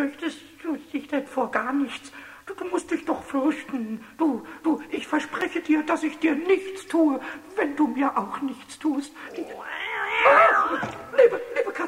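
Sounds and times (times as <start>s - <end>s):
speech: 0.0s - 11.8s
cat meowing: 9.3s - 11.2s.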